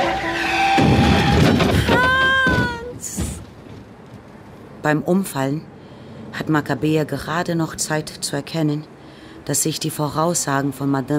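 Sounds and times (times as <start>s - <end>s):
yellow Mercedes skidding: 0.0s - 4.4s
yellow Mercedes striking a pedestrian crossing the street: 0.8s - 4.4s
speech: 4.8s - 5.8s, 6.4s - 11.1s.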